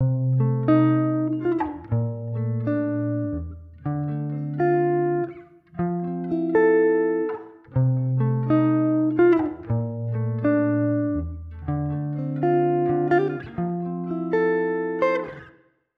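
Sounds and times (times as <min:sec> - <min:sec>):
guitar with chamber reverb: 0:00.0 - 0:15.9.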